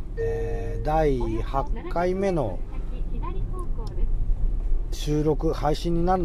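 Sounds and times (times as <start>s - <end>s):
deep rumble of road noise in a car cabin while driving: 0.0s - 6.2s
speech: 0.8s - 2.7s, 4.9s - 6.2s.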